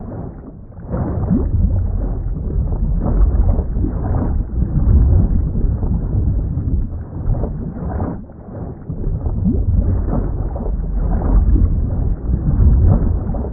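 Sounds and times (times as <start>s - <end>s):
small movement recorded by hydrophone: 0.0s - 13.5s.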